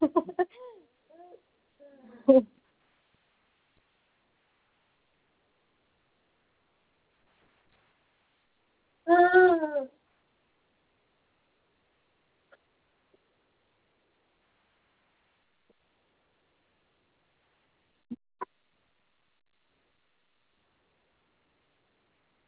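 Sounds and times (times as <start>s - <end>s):
one-year-old child babbling: 0.6s - 2.2s, 9.1s - 9.9s.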